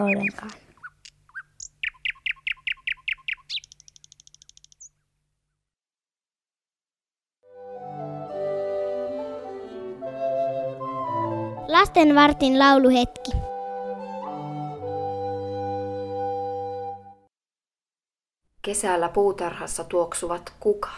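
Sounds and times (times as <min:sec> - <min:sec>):
speech: 0:00.0 - 0:00.6, 0:11.8 - 0:13.4, 0:18.7 - 0:20.9
thrush nightingale singing: 0:00.0 - 0:05.6
music: 0:07.4 - 0:17.3.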